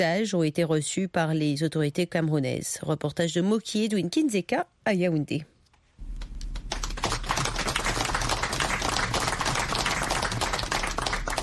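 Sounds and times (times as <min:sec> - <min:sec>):
speech: 0:00.0 - 0:05.5
large crowd applauding arrival of freed hostages in Yaoundé Cameroon: 0:06.5 - 0:11.4.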